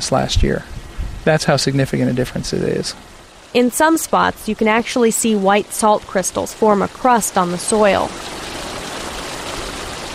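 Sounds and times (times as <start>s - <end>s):
speech: 0.0s - 8.4s
irrigation water gushing out of a pipe: 7.8s - 10.1s.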